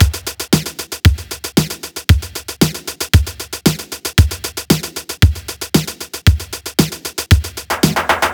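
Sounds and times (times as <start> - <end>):
lo-tech drum beat at 115 BPM: 0.0 - 8.3.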